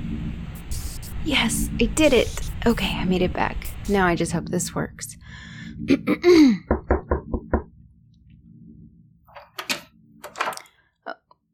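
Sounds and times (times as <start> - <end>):
speech: 1.2 - 5.2, 5.8 - 6.8
knocking on a door: 6.7 - 7.7.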